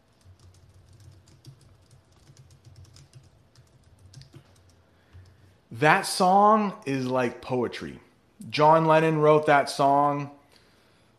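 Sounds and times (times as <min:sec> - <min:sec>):
typing on a computer keyboard: 0:00.0 - 0:05.5
speech: 0:05.8 - 0:10.4.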